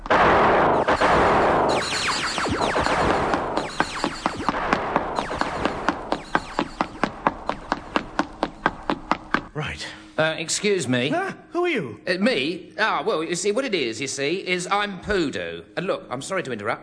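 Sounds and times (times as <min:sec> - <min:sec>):
gunfire: 0:00.0 - 0:09.4
speech: 0:10.2 - 0:16.8.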